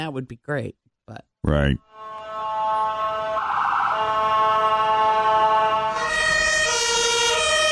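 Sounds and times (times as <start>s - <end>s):
speech: 0.0s - 2.2s
European-style two-tone emergency vehicle siren: 1.9s - 7.7s.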